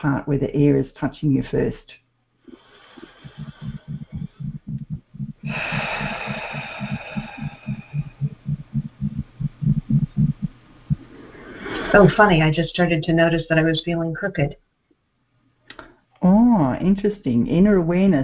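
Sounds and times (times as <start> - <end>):
speech: 0.0 - 2.6, 5.5 - 6.1, 11.9 - 14.6, 16.6 - 18.2
person taking a long airy deep breath in and out: 2.5 - 12.2
deep thumping pulse like a heartbeat: 3.0 - 11.2.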